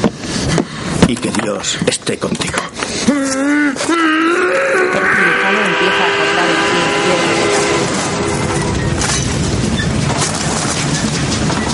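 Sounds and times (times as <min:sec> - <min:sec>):
speech: 0:01.1 - 0:07.6
Trans-Siberian train running through a tunnel at night: 0:04.8 - 0:11.7
rattling metallic clatter from the train wheels and cars: 0:06.9 - 0:11.7.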